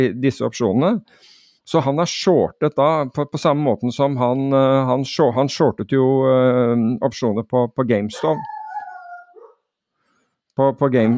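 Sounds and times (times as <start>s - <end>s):
speech: 0.0s - 8.5s, 10.6s - 11.1s
dog barking: 8.1s - 9.6s.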